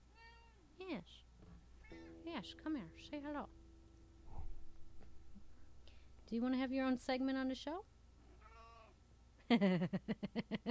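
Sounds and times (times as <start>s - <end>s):
quiet hum: 0.0s - 10.6s
male cat meowing: 0.1s - 0.6s, 8.3s - 9.0s
speech: 2.4s - 3.6s, 6.3s - 7.9s, 9.5s - 10.6s.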